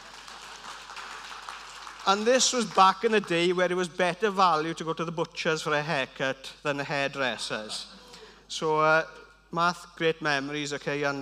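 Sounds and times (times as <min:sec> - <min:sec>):
small group applauding: 0:00.0 - 0:03.5
speech: 0:02.1 - 0:11.1.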